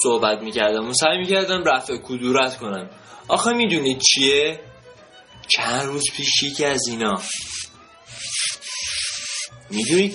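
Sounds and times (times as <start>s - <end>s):
speech: 0.0s - 4.7s, 5.5s - 7.6s, 9.7s - 10.1s
mouse scratching and scrabbling: 7.2s - 10.1s.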